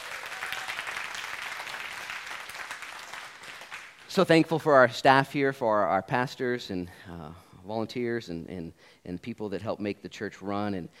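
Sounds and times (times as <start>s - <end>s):
audience applauding: 0.0s - 4.1s
speech: 4.2s - 10.9s.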